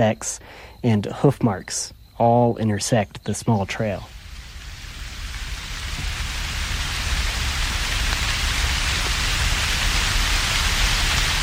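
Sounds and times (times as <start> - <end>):
speech: 0.0 - 4.2
heavy rain with a low rumbling undertone: 4.1 - 11.4.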